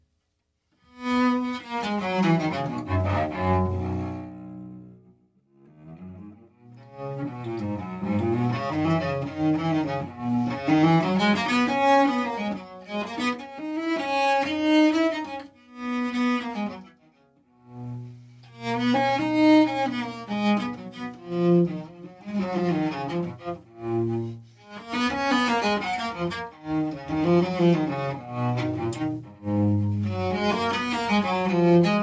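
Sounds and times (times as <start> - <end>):
cello with gut strings played with a baroque bow: 0.8 - 32.0.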